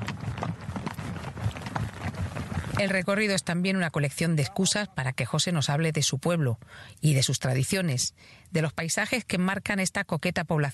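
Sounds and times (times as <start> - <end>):
hoofbeats of a horse trotting under a rider: 0.0 - 4.8
speech: 2.8 - 10.7.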